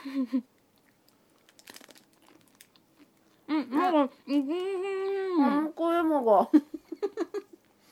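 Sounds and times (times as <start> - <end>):
speech: 0.0 - 0.6, 3.5 - 6.8
soft chewing of chocolate-coated strawberry and cream snack: 0.6 - 3.4
crunching chocolate-coated strawberry snack: 0.8 - 3.3.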